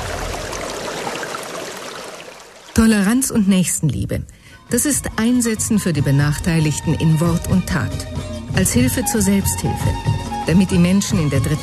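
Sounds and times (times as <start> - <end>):
water flowing from a village water-supply pump station: 0.0 - 3.3
speech: 2.8 - 11.6.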